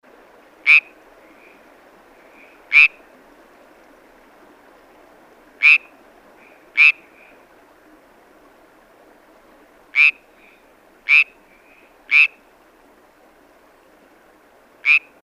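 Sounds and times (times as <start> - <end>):
California tree frog calling: 0.6 - 3.0, 5.6 - 7.4, 9.9 - 12.5, 14.8 - 15.2.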